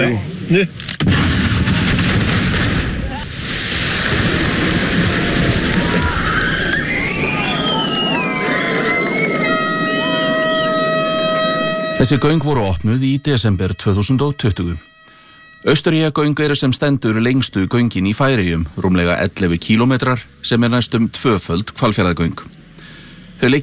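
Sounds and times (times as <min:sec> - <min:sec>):
speech: 0:00.0 - 0:01.3, 0:12.0 - 0:14.9, 0:15.6 - 0:22.6, 0:23.4 - 0:23.6
blasting explosion in a road tunnel under construction in the Faroe Islands: 0:01.0 - 0:07.0
wavering tones: 0:06.1 - 0:17.6
steady horn-like tone: 0:08.8 - 0:18.6.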